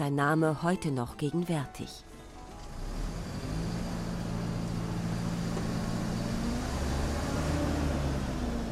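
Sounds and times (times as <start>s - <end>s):
speech: 0.0s - 2.1s
large bus engine rumbling on the route from Rio Branco to Chapuri: 2.2s - 8.7s.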